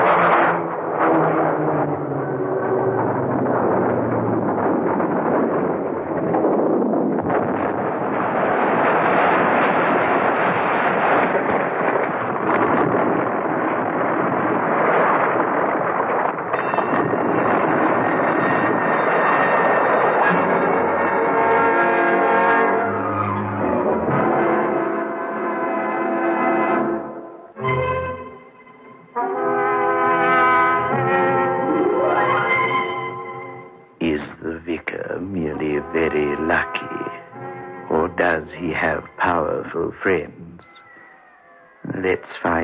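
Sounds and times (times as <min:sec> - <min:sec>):
deep rumbling: 0:00.0 - 0:42.6
straining aircraft engines roaring as a plane goes down: 0:00.0 - 0:42.6.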